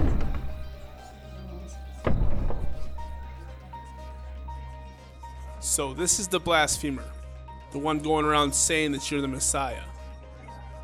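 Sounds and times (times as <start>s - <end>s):
heavy door swinging shut: 0.0s - 1.0s, 2.0s - 3.4s
speech: 5.7s - 9.9s.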